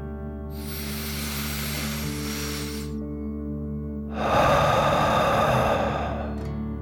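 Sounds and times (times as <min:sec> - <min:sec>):
deep breath in and out during a relaxation exercise: 0:00.5 - 0:03.1, 0:03.9 - 0:06.8.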